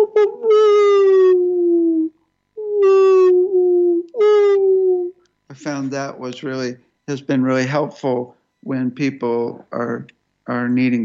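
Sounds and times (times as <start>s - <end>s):
person imitating a wolf howl: 0.0s - 5.2s
speech: 5.6s - 11.0s.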